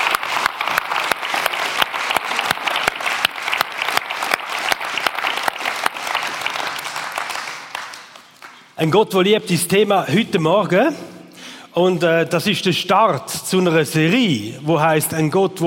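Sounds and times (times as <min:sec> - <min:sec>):
large audience applauding in a big hall: 0:00.0 - 0:08.8
speech: 0:08.8 - 0:11.1, 0:11.7 - 0:15.6.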